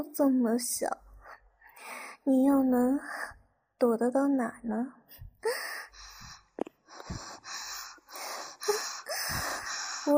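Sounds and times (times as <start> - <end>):
speech: 0.0 - 1.0, 1.8 - 5.6
heavy breathing of someone hiding in a small dungeon: 5.4 - 10.1.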